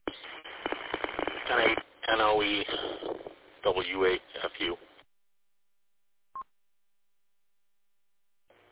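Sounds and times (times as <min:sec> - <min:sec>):
steady buzzing tone from a plugged-in phone: 0:00.0 - 0:01.8
speech: 0:01.5 - 0:04.9.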